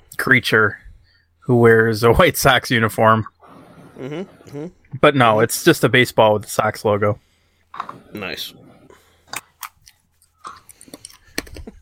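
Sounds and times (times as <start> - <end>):
speech: 0.2 - 0.9, 1.5 - 3.3, 4.0 - 8.6
person chewing food: 9.0 - 11.6.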